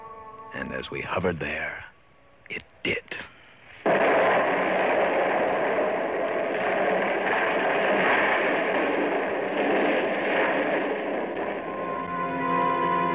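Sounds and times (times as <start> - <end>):
speech: 0.6 - 1.9
dynamite explosion blast: 3.8 - 13.1.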